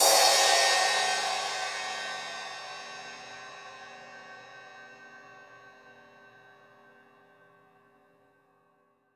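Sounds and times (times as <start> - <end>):
multi crash hi-hat drum hits: 0.0 - 5.6.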